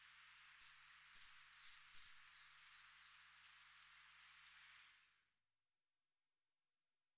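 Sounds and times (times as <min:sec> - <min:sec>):
short-toed treecreeper calls: 0:00.6 - 0:05.0.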